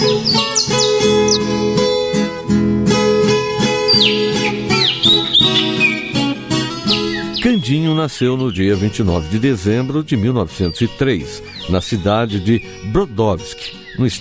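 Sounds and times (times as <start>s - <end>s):
small birds chirping and twittering: 0.0s - 2.4s, 3.6s - 14.2s
loud steady sustained music: 0.0s - 10.4s
speech: 7.7s - 14.2s.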